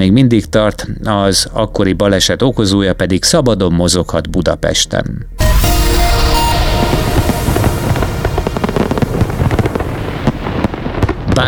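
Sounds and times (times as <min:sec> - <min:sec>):
speech: 0:00.0 - 0:05.6
fireworks exploding: 0:05.4 - 0:11.4.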